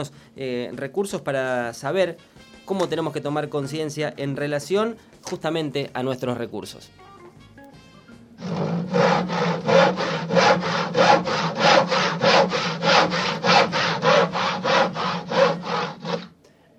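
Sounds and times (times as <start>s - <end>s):
speech: 0.0s - 7.1s
handsaw cutting through a tree: 8.4s - 16.4s.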